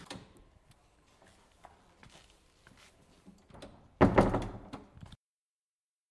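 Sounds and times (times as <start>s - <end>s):
knocking on an eerie door: 4.0s - 4.8s.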